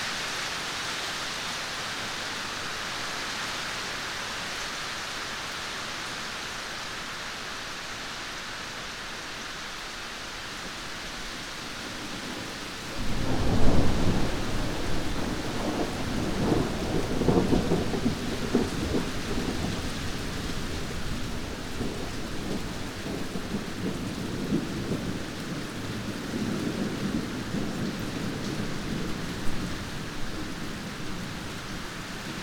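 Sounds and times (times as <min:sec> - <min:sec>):
rain: 0:00.0 - 0:32.4
thunder: 0:12.0 - 0:29.8.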